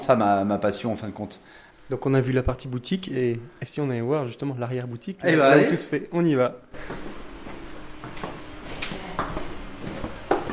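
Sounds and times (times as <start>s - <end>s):
faint hum: 0.0s - 10.5s
speech: 0.1s - 7.2s
boots walking on a hard floor: 6.8s - 10.5s.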